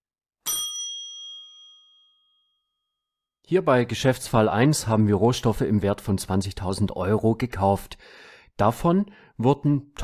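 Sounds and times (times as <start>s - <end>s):
single bell struck: 0.5s - 2.9s
speech: 3.5s - 10.0s.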